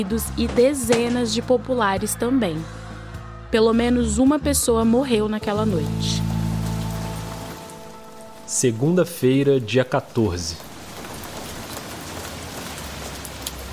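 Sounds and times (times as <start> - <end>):
speech: 0.0 - 2.8, 3.5 - 6.3, 8.5 - 10.7
low hum: 5.6 - 9.1
light rain falling: 5.6 - 13.7.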